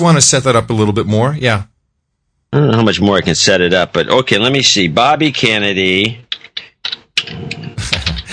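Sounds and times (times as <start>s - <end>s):
speech: 0.0s - 1.7s, 2.5s - 6.2s
rapid typing on a computer keyboard: 6.2s - 8.3s.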